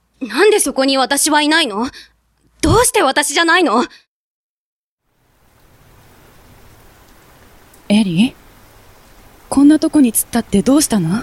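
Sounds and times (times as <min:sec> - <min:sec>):
speech: 0:00.2 - 0:04.0, 0:07.9 - 0:08.4, 0:09.5 - 0:11.2
rain falling: 0:05.0 - 0:11.2.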